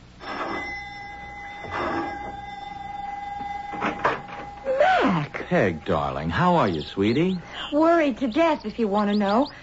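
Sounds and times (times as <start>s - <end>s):
electric doorbell ringing: 0.2s - 6.8s
speech: 5.5s - 9.6s.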